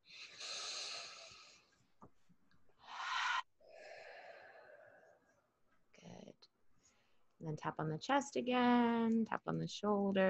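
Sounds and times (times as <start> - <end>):
faint slow deep breathing during a calming exercise: 0.0 - 1.8, 2.8 - 5.5
speech: 7.4 - 10.2.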